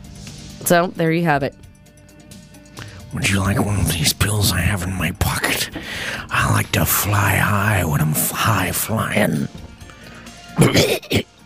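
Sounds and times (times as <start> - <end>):
speech: 0.6 - 1.7, 3.1 - 9.6, 10.6 - 11.3
person coughing harshly: 10.6 - 11.4.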